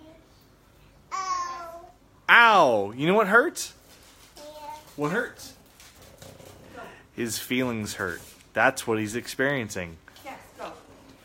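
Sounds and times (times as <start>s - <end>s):
toddler babbling at home: 1.1s - 2.0s
speech: 2.5s - 3.8s, 5.0s - 5.6s, 7.2s - 10.0s.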